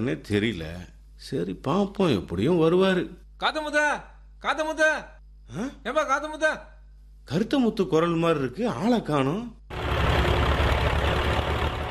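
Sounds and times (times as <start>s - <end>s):
speech: 0.0s - 6.7s, 7.3s - 9.6s
tractor engine idling: 9.7s - 11.9s.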